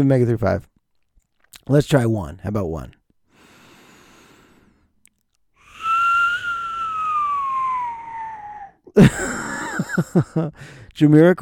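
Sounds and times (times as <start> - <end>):
speech: 0.0 - 0.7, 1.6 - 3.0, 9.0 - 9.3, 10.0 - 11.4
thin whistle through the nose: 5.6 - 8.8
laughter: 9.0 - 10.6.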